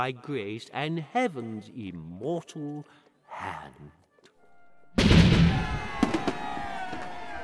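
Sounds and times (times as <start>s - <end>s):
speech: 0.0s - 4.0s
cannon blast: 5.0s - 6.5s.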